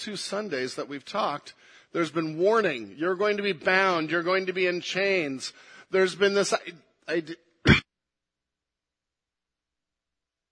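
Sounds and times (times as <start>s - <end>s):
speech: 0.0s - 7.8s
preacher clearing throat of phlegm mid-sermon: 7.6s - 7.9s.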